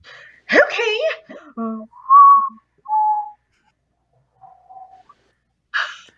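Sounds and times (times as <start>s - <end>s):
speech: 0.8s - 2.6s
person whistling a two-note call: 2.0s - 3.4s, 4.4s - 5.1s.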